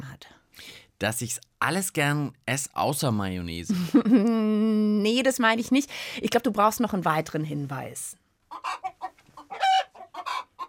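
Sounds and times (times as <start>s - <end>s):
speech: 1.0s - 8.2s
chickens clucking: 8.5s - 10.6s.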